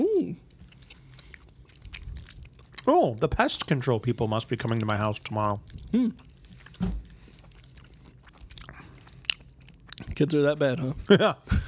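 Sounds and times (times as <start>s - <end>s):
chewing a chewy taffy-like mango candy: 0.0s - 11.1s
speech: 2.9s - 7.0s, 10.2s - 11.6s
person humming: 5.9s - 6.2s.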